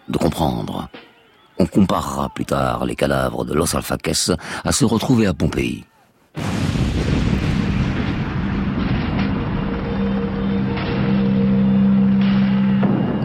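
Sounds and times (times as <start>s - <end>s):
speech: 0.1s - 1.0s, 1.6s - 6.5s
butane stove gas cylinders exploding in a chain reaction: 6.4s - 11.6s
dull booms: 6.4s - 13.2s
low droning tone: 8.4s - 13.2s.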